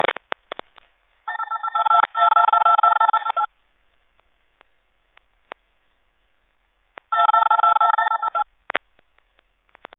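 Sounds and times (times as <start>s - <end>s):
short telephone voicemail crackle: 0.0s - 3.5s, 7.0s - 9.9s.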